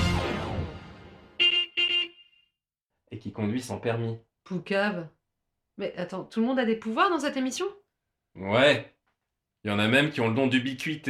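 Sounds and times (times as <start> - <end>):
bus horn honking: 1.4 - 2.5
speech: 3.2 - 5.2, 5.8 - 7.8, 8.4 - 8.9, 9.6 - 11.0.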